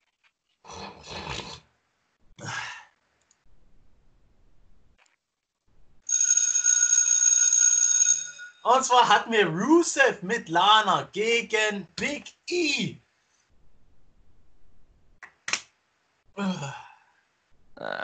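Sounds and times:
breathy sighs: 0:02.4 - 0:03.0, 0:16.4 - 0:17.2
bell ringing with a bright sustained tone: 0:06.1 - 0:08.8
speech: 0:08.7 - 0:13.0.

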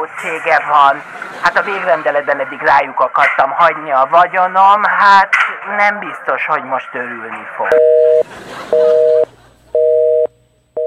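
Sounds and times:
speech: 0:00.0 - 0:09.0
laughter: 0:00.6 - 0:02.9, 0:08.2 - 0:10.0
telephone busy signal with two-pitch tone pulses: 0:07.7 - 0:10.8.

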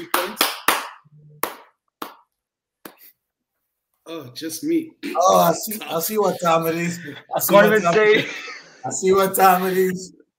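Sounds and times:
single person clapping hands in a quiet room: 0:00.0 - 0:03.1
speech: 0:04.1 - 0:10.2
laughter: 0:06.7 - 0:09.9.

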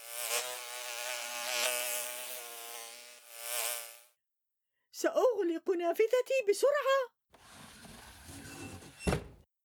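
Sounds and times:
bee buzzing loudly near a window: 0:00.0 - 0:04.2
speech: 0:05.0 - 0:07.2.

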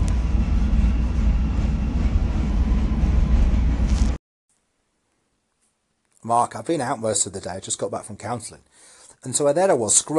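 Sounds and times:
subway train rumbling at steady speed: 0:00.0 - 0:04.2
speech: 0:06.2 - 0:10.1.

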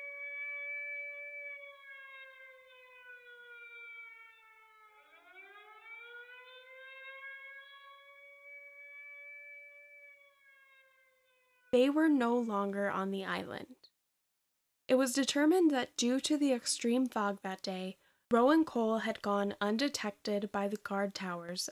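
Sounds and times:
prison escape alarm siren wailing at Alcatraz: 0:00.0 - 0:11.8
speech: 0:11.7 - 0:13.8, 0:14.9 - 0:21.7.

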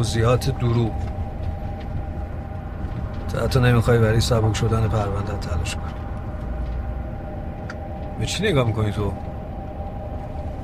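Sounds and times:
speech: 0:00.0 - 0:01.2, 0:03.3 - 0:06.0, 0:08.2 - 0:09.2
car engine rumbling: 0:00.0 - 0:10.6.

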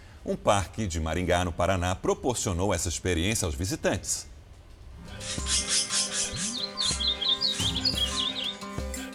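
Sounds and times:
steady rustling hum: 0:00.0 - 0:08.5
speech: 0:00.2 - 0:04.3
birds chirping and trilling in a park: 0:05.0 - 0:09.1.

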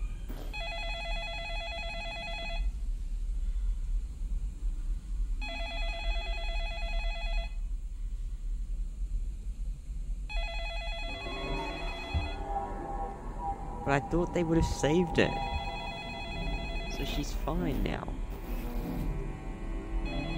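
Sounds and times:
steady low rumble: 0:00.0 - 0:20.3
telephone ringing with an electronic trill: 0:00.5 - 0:02.7, 0:05.4 - 0:07.6, 0:10.3 - 0:12.4, 0:15.3 - 0:17.6
speech: 0:13.9 - 0:15.5, 0:17.0 - 0:18.2.

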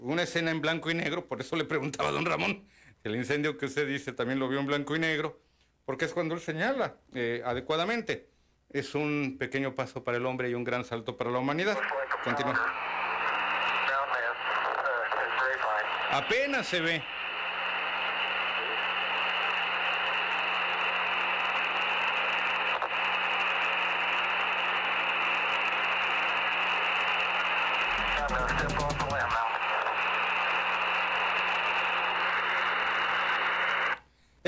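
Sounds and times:
speech: 0:00.0 - 0:13.0, 0:16.1 - 0:17.2
white-noise static from an old radio transmission: 0:01.8 - 0:02.6, 0:11.6 - 0:34.4
crackly disturbance: 0:17.1 - 0:34.0.

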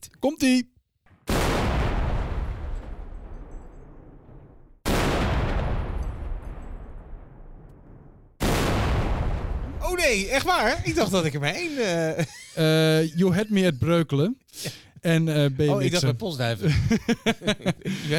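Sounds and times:
speech: 0:00.0 - 0:00.7, 0:10.0 - 0:18.1
cannon shots booming: 0:01.1 - 0:11.6
laughter: 0:10.0 - 0:13.9, 0:15.7 - 0:18.1.

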